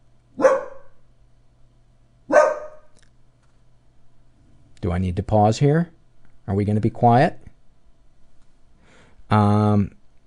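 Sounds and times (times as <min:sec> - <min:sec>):
dogs barking: 0:00.4 - 0:01.0, 0:02.3 - 0:03.0
speech: 0:04.8 - 0:07.4, 0:09.3 - 0:10.0.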